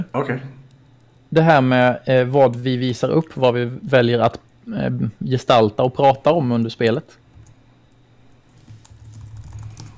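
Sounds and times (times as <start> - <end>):
speech: 0.0 - 0.6, 1.3 - 7.2
fingers typing on a computer keyboard: 8.7 - 9.9.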